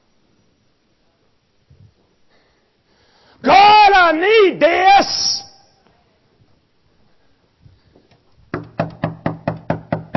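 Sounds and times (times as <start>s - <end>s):
speech: 3.4s - 5.2s
knocking on a door: 8.5s - 10.1s.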